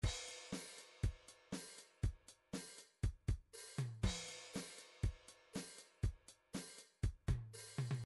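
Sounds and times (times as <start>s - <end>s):
driving drums: 0.0s - 8.0s.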